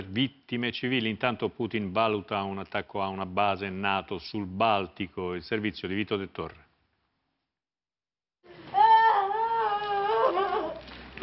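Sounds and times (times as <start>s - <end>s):
speech: 0.0s - 6.6s
woman crying out in a wailing sob: 8.8s - 10.8s.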